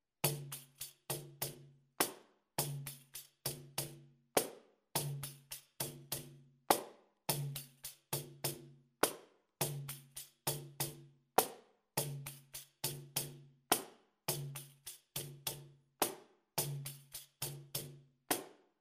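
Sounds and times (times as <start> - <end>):
slow capoeira rhythm on pandeiro: 0.3 - 18.5.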